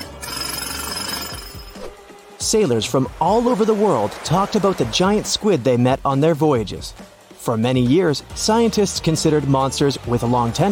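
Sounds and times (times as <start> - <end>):
jackhammer pounding: 0.0 - 1.8
speech: 2.4 - 10.7.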